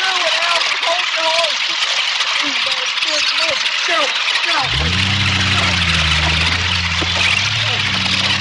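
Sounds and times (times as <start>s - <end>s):
people talking: 0.0s - 1.8s, 2.4s - 8.3s
truck engine revving while pulling a stuck man out: 4.6s - 8.3s.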